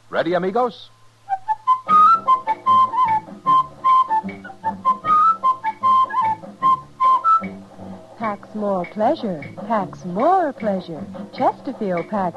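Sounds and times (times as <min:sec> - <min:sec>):
speech: 0:00.1 - 0:01.0, 0:08.2 - 0:12.3
bright whistled jingle melody: 0:01.3 - 0:07.6.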